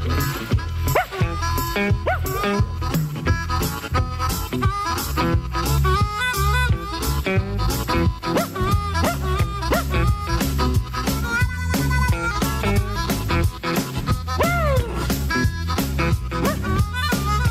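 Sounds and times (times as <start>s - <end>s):
busy twangy music: 0.0s - 17.4s
hound dog barking and yipping: 0.9s - 1.4s, 2.0s - 2.6s, 8.3s - 10.1s, 16.4s - 16.8s.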